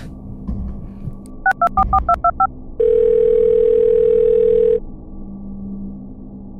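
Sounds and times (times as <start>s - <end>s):
low hum: 0.0s - 6.5s
touch-tone beeps as a telephone number is keyed in: 1.5s - 4.8s.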